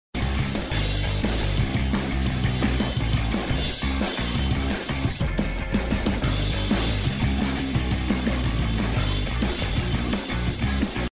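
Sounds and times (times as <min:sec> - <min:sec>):
in-game background music: 0:00.2 - 0:11.1.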